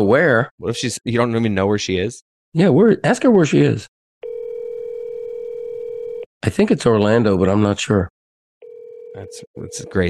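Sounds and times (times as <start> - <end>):
speech: 0.0 - 4.0, 6.4 - 8.2, 9.2 - 10.0
steady outgoing telephone call tone: 4.2 - 6.3, 8.6 - 10.0.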